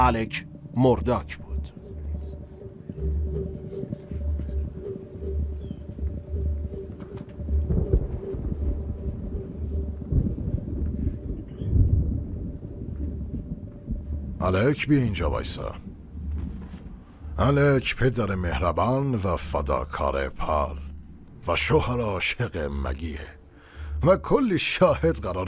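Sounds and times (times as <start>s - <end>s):
speech: 0.0s - 1.5s, 14.4s - 15.8s, 17.4s - 20.8s, 21.4s - 23.4s, 24.0s - 25.4s
gusting wind roaring in a thunderstorm: 1.5s - 18.7s
deep rolls of thunder: 7.4s - 17.9s.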